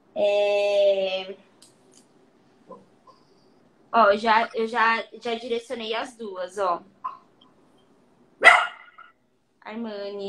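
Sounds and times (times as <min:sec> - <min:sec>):
speech: 0:00.2 - 0:00.6, 0:03.9 - 0:06.9, 0:09.7 - 0:10.2
dog barking: 0:08.4 - 0:09.1.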